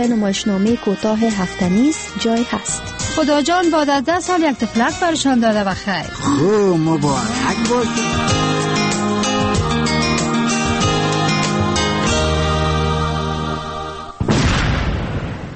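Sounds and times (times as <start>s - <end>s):
speech: 0.0s - 9.3s
sustained tonal music: 0.0s - 14.2s
loud landmine explosion with decaying roar: 14.2s - 15.5s.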